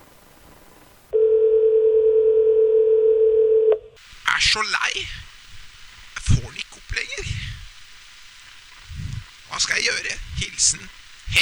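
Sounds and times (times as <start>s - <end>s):
telephone dial tone: 1.2s - 3.8s
speech: 4.5s - 5.3s, 9.6s - 11.4s.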